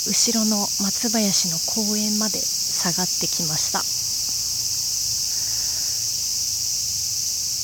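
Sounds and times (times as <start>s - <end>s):
speech: 0.0s - 4.0s
cicadas buzzing loudly: 0.0s - 7.6s.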